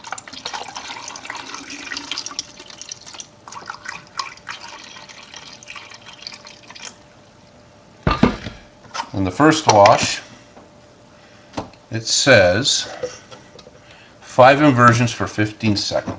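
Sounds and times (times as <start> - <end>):
tap water pouring into a container: 0.0 - 7.0
clunk: 8.0 - 8.6
speech: 9.2 - 10.2, 11.9 - 13.2, 14.4 - 16.1.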